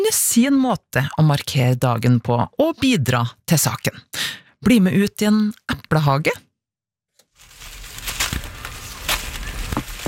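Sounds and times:
speech: 0:00.0 - 0:06.5
apples dropping from large old apple trees onto garden ground: 0:07.4 - 0:10.0.

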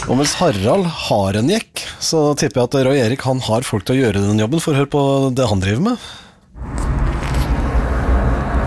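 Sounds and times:
speech: 0:00.1 - 0:06.2
car tyres and engine driving along a road: 0:06.6 - 0:08.6.

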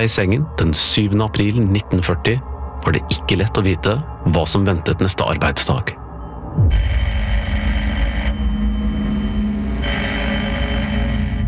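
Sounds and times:
speech: 0:00.0 - 0:06.0, 0:06.6 - 0:07.3
old telephone bell ringing: 0:06.7 - 0:11.4.

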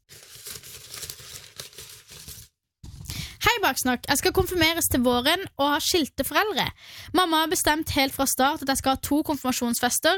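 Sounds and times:
paper crinkling as a folded note is unfolded: 0:00.0 - 0:02.6
speech: 0:03.6 - 0:10.1.

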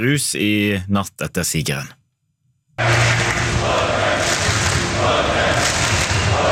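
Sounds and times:
speech: 0:00.0 - 0:02.0, 0:02.8 - 0:03.8
large crowd of Norwegian football fans cheering and shouting at night: 0:02.8 - 0:06.5.

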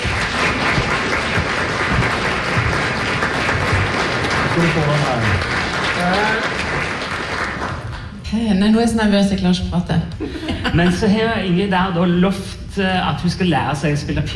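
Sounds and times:
people cheering: 0:00.0 - 0:07.8
audience applause in a packed hall: 0:00.0 - 0:08.2
speech: 0:04.6 - 0:06.6, 0:08.3 - 0:14.3.

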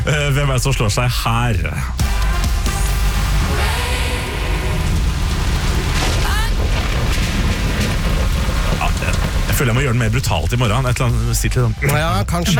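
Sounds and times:
speech: 0:00.1 - 0:02.8, 0:09.6 - 0:12.5
heavy rain pouring: 0:02.8 - 0:12.5
deep rolling thunder rumble: 0:03.4 - 0:11.6.

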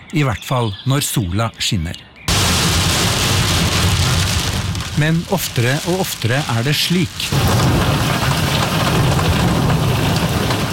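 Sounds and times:
speech: 0:00.1 - 0:02.1, 0:05.0 - 0:07.8
heavy driving rain: 0:02.3 - 0:10.7.

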